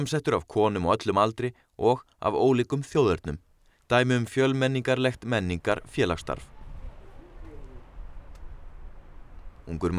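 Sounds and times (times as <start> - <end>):
speech: 0.0 - 6.5, 9.7 - 9.9
rumble in a town square: 5.0 - 9.9
pigeons cooing in a town square: 6.3 - 9.4.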